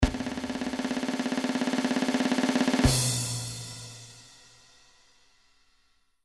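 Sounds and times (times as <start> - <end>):
MIDI drumroll: 0.0 - 4.2.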